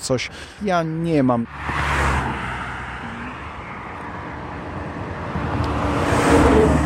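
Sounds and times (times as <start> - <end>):
steady roadside traffic rumbling: 0.0 - 6.8
speech: 0.1 - 1.8
vehicle passing: 1.4 - 6.8
car swishing past: 1.5 - 4.2, 5.4 - 6.8.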